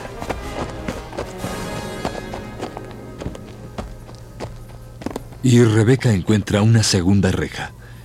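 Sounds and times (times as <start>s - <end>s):
soft footsteps sneaking away: 0.0s - 5.7s
speech: 5.4s - 7.8s.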